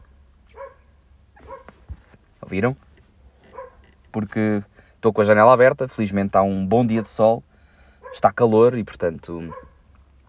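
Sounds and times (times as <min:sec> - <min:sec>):
dog barking outside open window: 0:00.0 - 0:01.8, 0:03.5 - 0:03.8, 0:06.9 - 0:07.2, 0:08.0 - 0:08.4, 0:09.4 - 0:09.9
speech: 0:02.5 - 0:02.9, 0:04.2 - 0:07.5, 0:08.1 - 0:09.7.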